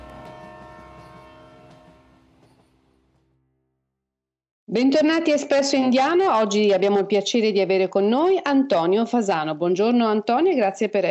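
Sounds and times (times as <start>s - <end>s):
train horn as a train departs: 0.0s - 2.8s
speech: 4.7s - 11.0s.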